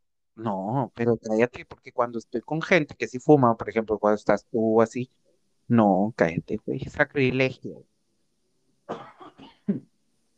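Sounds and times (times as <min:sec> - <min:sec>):
speech: 0:00.4 - 0:07.9, 0:08.9 - 0:09.9
person having a coughing fit: 0:08.9 - 0:09.8.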